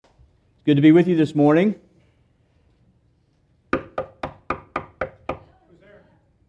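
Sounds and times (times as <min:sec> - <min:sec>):
speech: 0:00.7 - 0:01.9
firm knocking on a front door: 0:03.7 - 0:05.5.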